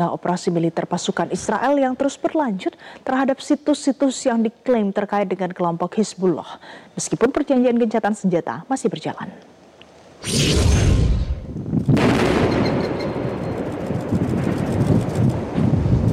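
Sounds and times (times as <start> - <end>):
speech: 0.0 - 9.6, 10.2 - 11.0
heavy blast: 10.2 - 14.8
huge explosion: 10.2 - 16.0.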